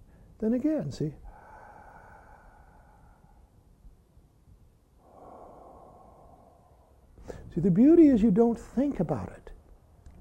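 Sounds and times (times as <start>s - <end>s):
speech: 0.4s - 1.2s, 7.6s - 9.4s
slow deep breaths drawn through the nose: 1.2s - 3.9s, 5.0s - 7.5s.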